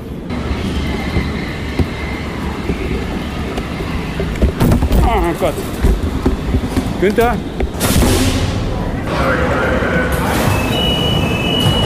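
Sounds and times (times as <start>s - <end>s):
rolling wheel noise of subway train: 0.0s - 11.8s
subway train rumbling at underground station: 0.0s - 11.8s
speech: 5.3s - 5.9s, 7.0s - 7.6s
sharp clank: 7.8s - 9.0s.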